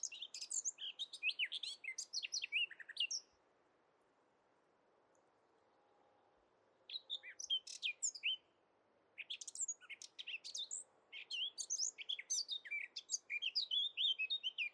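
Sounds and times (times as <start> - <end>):
Eurasian blackcap Sylvia atricapilla song: 0.0 - 3.3, 6.9 - 8.4, 9.2 - 14.7.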